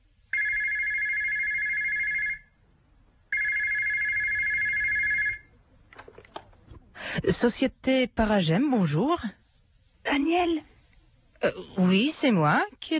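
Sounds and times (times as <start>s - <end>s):
telephone ringing with an electronic trill: 0.3s - 2.5s, 3.3s - 5.5s
speech: 7.2s - 9.4s, 10.2s - 10.7s, 11.4s - 12.9s.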